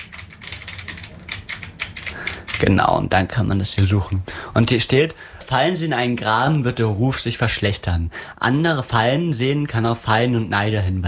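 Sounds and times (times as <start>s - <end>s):
typing on a computer keyboard: 0.0s - 2.8s
speech: 2.6s - 11.0s.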